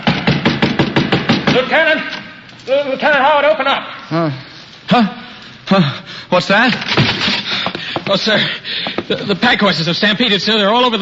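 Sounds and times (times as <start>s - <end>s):
hammer driving a golden nail into a fort's wooden name sign: 0.0s - 1.7s
speech: 1.6s - 7.4s, 8.1s - 11.0s.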